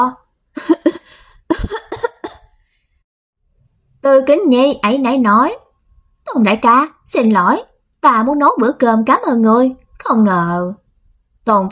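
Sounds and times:
speech: 0:00.0 - 0:00.7, 0:04.0 - 0:05.6, 0:06.3 - 0:10.8, 0:11.4 - 0:11.7
woman coughing from kitchen smoke: 0:00.6 - 0:02.5.

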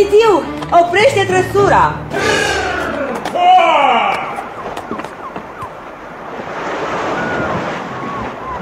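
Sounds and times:
speech: 0:00.0 - 0:02.6
sea waves surging: 0:01.9 - 0:08.5.

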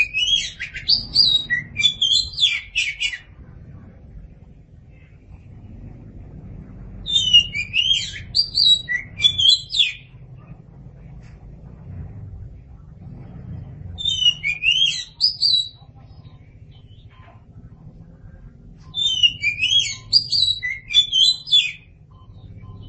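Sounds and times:
oriental magpie-robin song with high chirps and whistles: 0:00.0 - 0:03.4, 0:07.0 - 0:10.2, 0:13.8 - 0:17.4, 0:18.8 - 0:22.8
faint low hum: 0:00.0 - 0:22.8.

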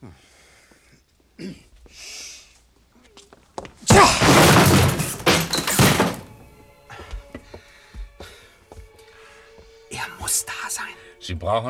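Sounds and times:
speech: 0:01.4 - 0:02.1, 0:11.4 - 0:11.6
soft scattered thuds: 0:03.3 - 0:09.8
door being kicked in with a splintering crash: 0:03.9 - 0:06.5.

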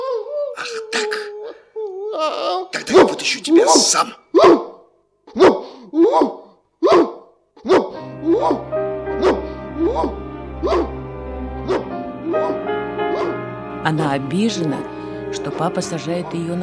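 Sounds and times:
speech: 0:02.2 - 0:04.6, 0:13.9 - 0:16.6
dog barking: 0:04.3 - 0:10.9, 0:11.6 - 0:13.4.

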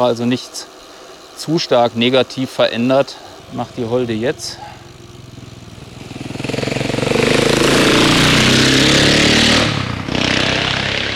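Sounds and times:
speech: 0:00.0 - 0:00.8, 0:01.4 - 0:04.7
vehicle engine driving through a roundabout: 0:03.0 - 0:11.1.

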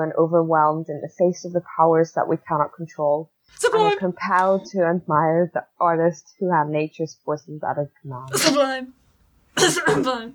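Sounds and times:
speech: 0:00.0 - 0:09.0, 0:09.6 - 0:10.3
rough throat-clearing: 0:09.6 - 0:10.1
person coughing in the background: 0:09.6 - 0:10.2.

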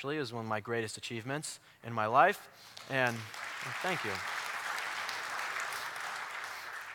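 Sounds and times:
speech: 0:00.0 - 0:04.4
crowd clapping: 0:02.8 - 0:06.9.

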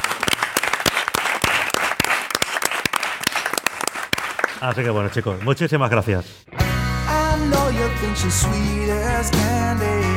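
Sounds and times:
audience applause thanking a team at an anniversary: 0:00.0 - 0:05.6
speech: 0:04.6 - 0:06.5, 0:07.4 - 0:10.0.

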